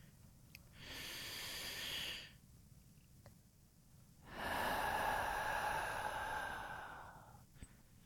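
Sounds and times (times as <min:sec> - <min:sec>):
deep slow breathing from a person lying face down during a relaxation exercise: 0:00.0 - 0:02.4, 0:04.2 - 0:08.0.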